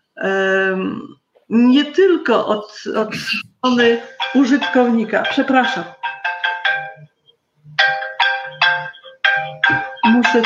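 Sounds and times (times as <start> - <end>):
speech: 0.2 - 6.0
mobile phone ringtone for an incoming call: 3.7 - 10.4.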